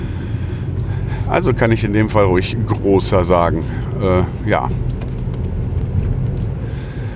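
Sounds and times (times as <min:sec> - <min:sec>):
road noise inside a small car being driven: 0:00.0 - 0:07.1
small Fiesta car engine rumble while driven: 0:00.0 - 0:07.1
speech: 0:01.3 - 0:05.0.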